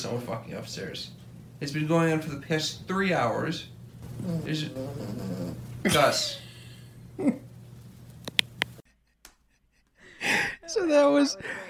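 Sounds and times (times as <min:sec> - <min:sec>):
speech: 0:00.0 - 0:06.4, 0:07.2 - 0:07.4, 0:10.7 - 0:11.6
low steady hum: 0:00.0 - 0:08.9
dog snoring: 0:04.0 - 0:07.4.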